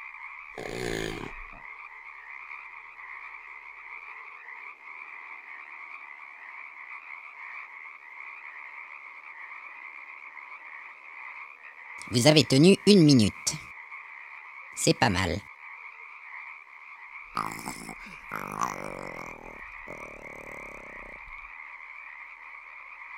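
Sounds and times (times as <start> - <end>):
speech: 0.6 - 1.0, 12.1 - 13.6, 14.8 - 15.5
dense chorus of croaking frogs: 0.6 - 1.6, 17.4 - 21.4
lizard call: 0.6 - 1.6, 17.4 - 21.3.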